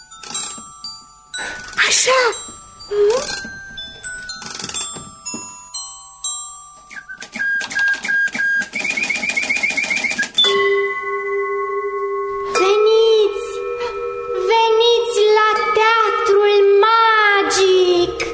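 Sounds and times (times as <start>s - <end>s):
bright bell-like chime tones: 0.0s - 6.8s, 10.4s - 18.3s
rapid mechanical clicking and ratcheting: 0.1s - 0.7s, 3.2s - 5.0s, 6.9s - 10.4s
speech: 1.9s - 3.5s.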